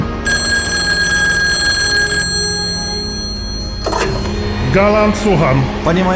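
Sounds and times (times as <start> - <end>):
old-fashioned telephone bell ringing: 0.0 - 4.5
clunk or rustle: 3.7 - 4.4
speech: 4.7 - 6.1.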